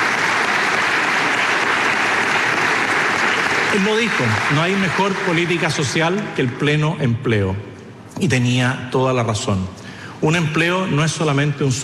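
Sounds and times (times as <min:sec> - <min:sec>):
sustained applause from a sizable crowd: 0:00.0 - 0:06.8
speech: 0:03.7 - 0:11.8.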